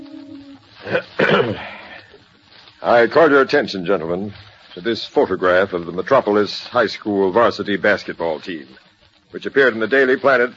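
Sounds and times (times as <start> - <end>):
man clearing his throat: 0.8 - 1.8
speech: 0.8 - 1.8, 2.8 - 10.5.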